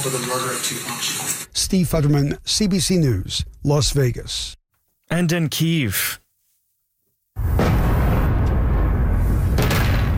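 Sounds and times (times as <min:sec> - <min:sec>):
speech: 0:00.0 - 0:06.2
explosions at night over a city: 0:07.4 - 0:10.1.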